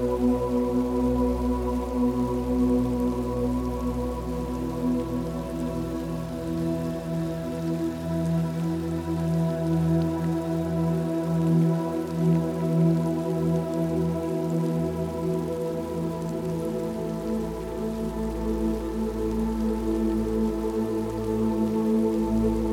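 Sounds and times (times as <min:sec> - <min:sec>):
calm sustained musical drone of low warm tones: 0:00.0 - 0:22.7
soft rain pattering: 0:00.0 - 0:22.7.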